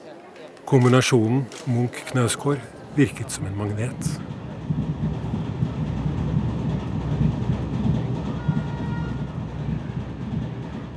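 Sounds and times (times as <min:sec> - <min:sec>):
speech: 0:00.7 - 0:05.1
train rumbling on rails: 0:03.2 - 0:10.9.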